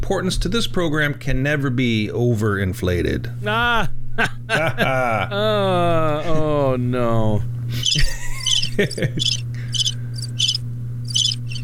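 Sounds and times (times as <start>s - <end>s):
speech: 0.1s - 8.1s, 8.8s - 9.5s
crickets chirping sound effect: 7.8s - 11.6s.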